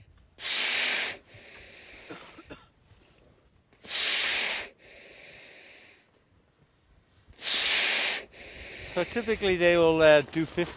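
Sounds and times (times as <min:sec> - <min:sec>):
seal breathing heavily through its nostrils at a drilled hole: 0:00.4 - 0:01.2, 0:07.4 - 0:08.6
seal rattling draw of breath: 0:00.4 - 0:02.4, 0:03.8 - 0:06.1, 0:07.3 - 0:09.6
speech: 0:09.0 - 0:10.7.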